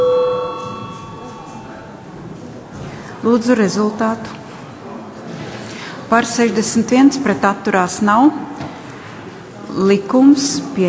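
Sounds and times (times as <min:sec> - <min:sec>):
parliament electronic voting bell ringing: 0:00.0 - 0:02.1
faint ringing hum: 0:00.0 - 0:02.6
speech: 0:03.2 - 0:04.4, 0:06.1 - 0:08.6, 0:09.8 - 0:10.8.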